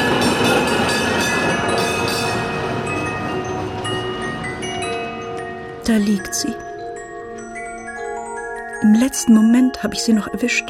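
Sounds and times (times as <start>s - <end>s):
tram wheels rumbling on rails on a city street: 0.0s - 6.1s
speech: 5.9s - 6.7s, 8.8s - 10.6s.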